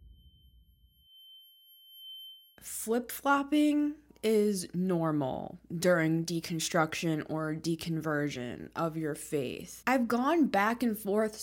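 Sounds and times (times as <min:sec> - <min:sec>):
high-pitched ear ringing tone: 0:00.0 - 0:02.8
speech: 0:02.6 - 0:11.4.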